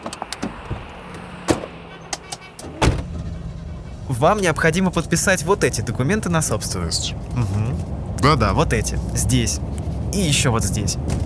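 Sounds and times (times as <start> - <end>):
car door thudding shut: 0.0 - 4.1, 11.0 - 11.2
car engine idling: 0.0 - 11.2
speech: 4.1 - 11.2.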